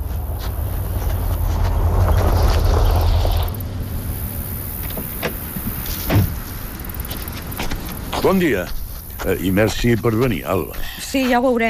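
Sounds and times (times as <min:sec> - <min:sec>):
car rumbling as it arrives: 0:00.0 - 0:10.4
car door opening with a clunk: 0:04.8 - 0:06.4
speech: 0:08.2 - 0:11.6.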